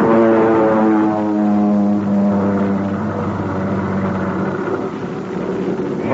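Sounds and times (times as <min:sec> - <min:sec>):
propeller airplane roaring low overhead: 0:00.0 - 0:06.1.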